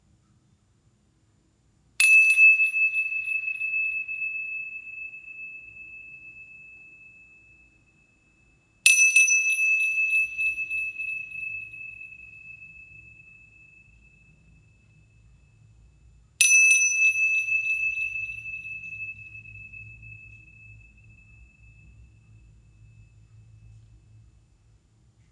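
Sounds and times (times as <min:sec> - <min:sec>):
metal healing bowl struck and ringing: 0:02.0 - 0:07.6, 0:08.9 - 0:14.3, 0:16.4 - 0:22.1.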